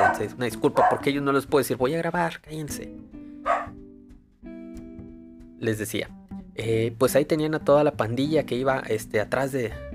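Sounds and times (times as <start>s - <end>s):
dog barking: 0.0s - 1.1s, 3.4s - 3.8s
speech: 0.2s - 3.6s, 5.6s - 9.9s.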